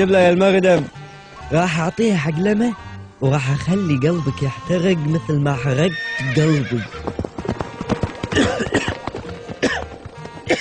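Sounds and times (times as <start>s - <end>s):
speech: 0.0s - 7.3s, 8.4s - 8.9s
carriage horse whinnying: 5.7s - 10.5s
carriage horse hooves clattering: 6.2s - 10.5s.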